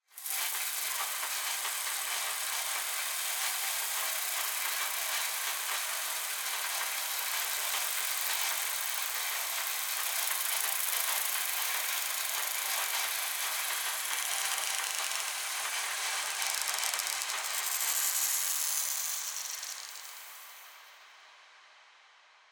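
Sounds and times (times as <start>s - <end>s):
high mecha insects swarm drone texture: 0.2s - 21.2s.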